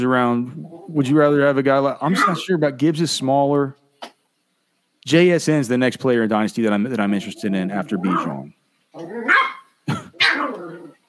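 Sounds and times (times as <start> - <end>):
speech: 0.0 - 3.8, 5.0 - 9.4
female dog barking loudly: 2.2 - 2.4, 8.0 - 8.4, 9.2 - 10.6.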